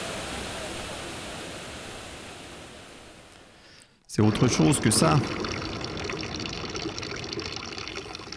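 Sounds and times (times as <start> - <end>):
speech: 4.1 - 5.7
public drinking water fountain trickling beside the town hall in Clermont-Ferrand: 4.1 - 8.3.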